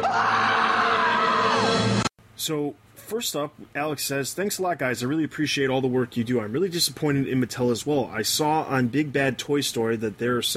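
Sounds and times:
person screaming shrilly: 0.0 - 2.0
speech: 2.4 - 10.5.

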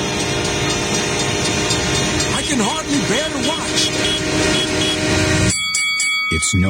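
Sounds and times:
train rumbling through a rail crossing: 0.0 - 5.6.

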